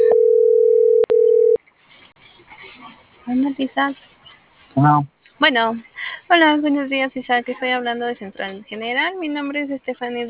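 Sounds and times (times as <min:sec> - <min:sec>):
telephone ringback tone on an unanswered call: 0:00.0 - 0:01.6
speech: 0:03.3 - 0:04.1, 0:04.8 - 0:10.2.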